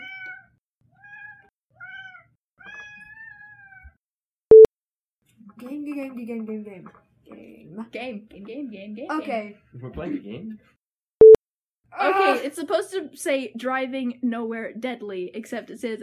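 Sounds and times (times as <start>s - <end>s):
cat meowing: 0.0s - 4.0s
speech: 5.6s - 10.8s, 11.9s - 16.0s.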